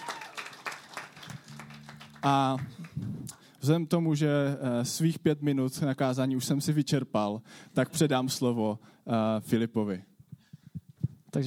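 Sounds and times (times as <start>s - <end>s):
audience applauding the band: 0.0s - 3.4s
speech: 2.2s - 10.1s.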